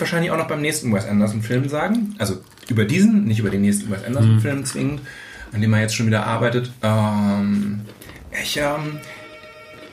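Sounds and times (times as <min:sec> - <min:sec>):
speech: 0:00.0 - 0:09.2
electronic doorbell ringing: 0:08.9 - 0:09.9.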